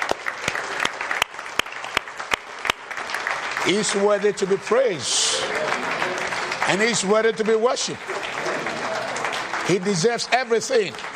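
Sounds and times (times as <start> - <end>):
audience applause in a room: 0.0 - 11.1
speech: 3.6 - 8.4, 9.7 - 11.1.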